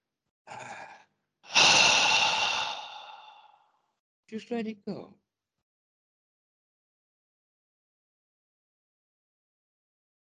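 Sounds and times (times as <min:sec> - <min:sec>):
person taking a deep breath and sighing out: 0:00.5 - 0:03.7
speech: 0:04.3 - 0:05.2.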